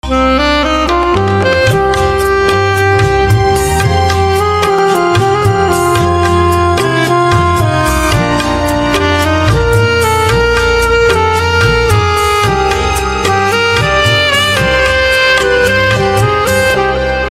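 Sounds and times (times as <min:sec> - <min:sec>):
saxophone ringtone: 0:00.0 - 0:17.2.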